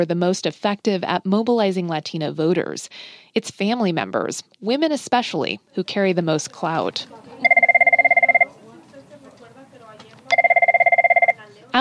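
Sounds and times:
speech: 0.0 - 7.5
murmur of voices: 6.7 - 10.5, 11.2 - 11.7
telephone ringing with a rapid warbling trill: 7.4 - 8.6, 10.3 - 11.4.

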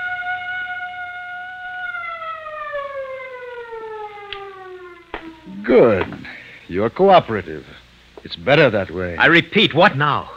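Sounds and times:
alarm siren wailing and winding down: 0.0 - 6.4
speech: 5.6 - 10.3.

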